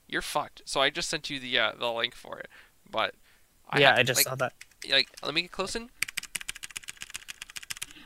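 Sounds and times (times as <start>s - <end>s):
speech: 0.1s - 6.0s
mechanical keyboard keys clicking: 6.0s - 7.8s.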